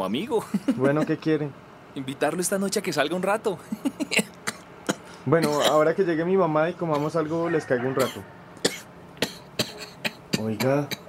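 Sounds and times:
speech: 0.0 - 4.4, 5.2 - 8.4, 10.4 - 11.0
laughter: 0.4 - 1.2, 3.6 - 4.2
person coughing: 4.1 - 5.9, 8.0 - 11.0.

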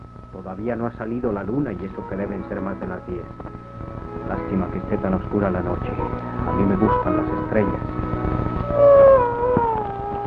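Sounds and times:
speech: 0.4 - 3.7, 4.3 - 9.0
coyotes howling on a dark night: 8.6 - 10.2.

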